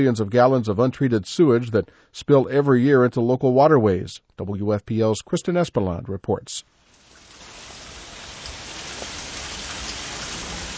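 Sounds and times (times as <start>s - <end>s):
speech: 0.0s - 6.8s
steady dense rain hissing: 6.7s - 10.7s.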